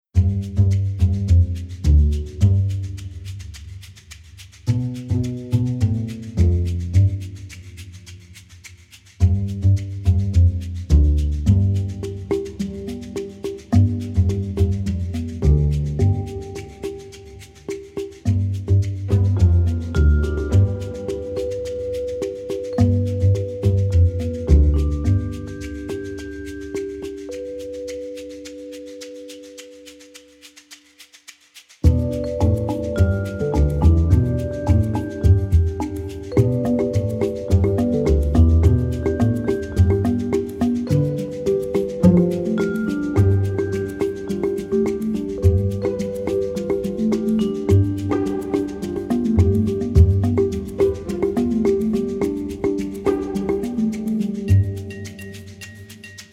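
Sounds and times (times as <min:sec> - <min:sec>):
groovy mambo percussion music: 0:00.0 - 0:56.3.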